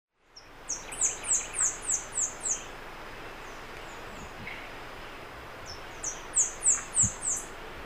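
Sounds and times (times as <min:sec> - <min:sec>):
Saffron-billed sparrow Arremon flavirostris singing: 0:00.2 - 0:07.7.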